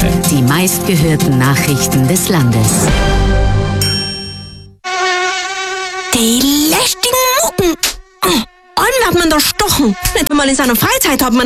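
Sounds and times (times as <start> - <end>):
speech: 0.3 - 3.4, 7.6 - 11.4
mosquito whine buzzing: 4.4 - 11.4.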